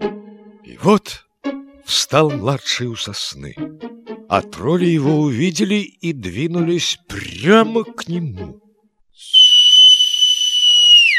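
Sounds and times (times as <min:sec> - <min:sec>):
speech: 0:00.8 - 0:01.2, 0:01.9 - 0:08.6
sustained high whistle: 0:09.2 - 0:11.1.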